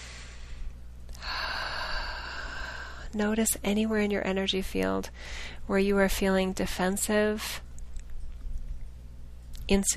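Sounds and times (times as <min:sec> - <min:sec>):
deep breath drawn in during a guided relaxation exercise: 0:00.0 - 0:03.2, 0:05.2 - 0:05.6
speech: 0:03.1 - 0:07.6, 0:09.7 - 0:09.9.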